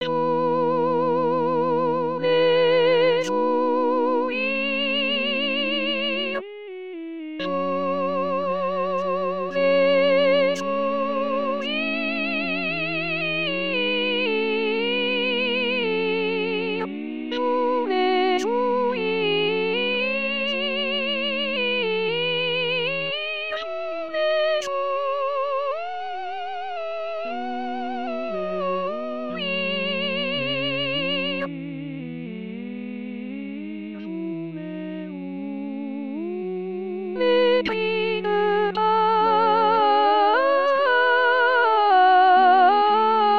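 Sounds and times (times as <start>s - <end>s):
soprano singing: 0.0s - 35.4s, 37.1s - 43.3s.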